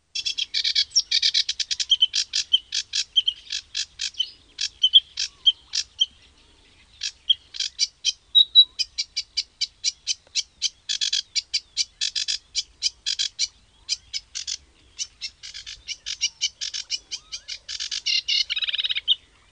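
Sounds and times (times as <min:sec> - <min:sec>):
sedge warbler: 0:00.1 - 0:19.4.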